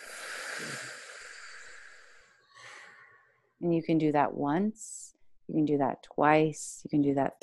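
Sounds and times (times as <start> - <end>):
slow belly breathing through the nose during a breathing exercise: 0.0 - 3.2
speech: 3.6 - 7.4.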